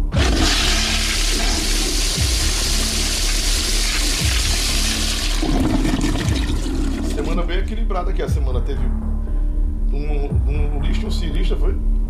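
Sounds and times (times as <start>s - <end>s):
toilet flushing: 0.1s - 7.4s
speech: 8.0s - 9.3s, 9.9s - 12.0s.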